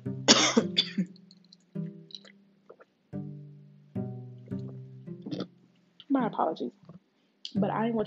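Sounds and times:
person coughing after water went down the wrong way: 0.3s - 1.1s
speech: 6.2s - 6.8s, 7.6s - 8.0s.

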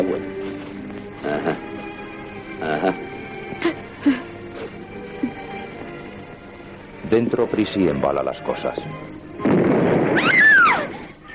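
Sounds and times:
speech: 0.0s - 0.4s, 1.2s - 2.0s, 7.1s - 9.2s
explosion with deep rumbling roar: 9.4s - 11.1s
high wavering cry: 10.2s - 11.3s.

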